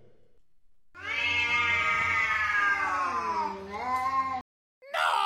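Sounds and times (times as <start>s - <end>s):
two cats caterwauling fighting under a window: 1.0s - 5.1s.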